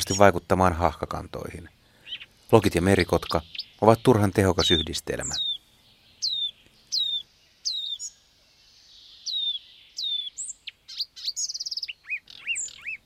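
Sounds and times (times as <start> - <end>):
speech: 0.0 - 1.8, 2.5 - 5.6
marsh warbler singing from a juniper thicket: 0.0 - 13.0.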